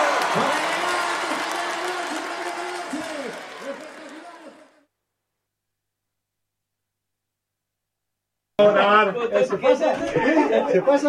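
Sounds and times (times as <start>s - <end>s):
crowd applauding and cheering: 0.0s - 4.8s
laughter: 9.6s - 11.0s.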